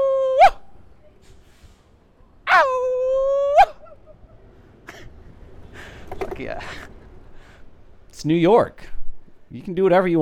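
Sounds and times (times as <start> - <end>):
person biking fast in New York imitating a wolf howl: 0.0 - 0.6, 2.5 - 4.0
speech: 6.4 - 6.9, 8.2 - 8.9, 9.5 - 10.1.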